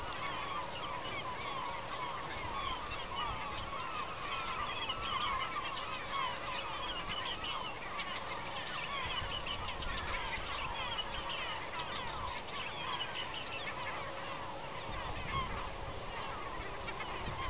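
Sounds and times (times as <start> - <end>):
Hippolais warbler: 0.0 - 17.4.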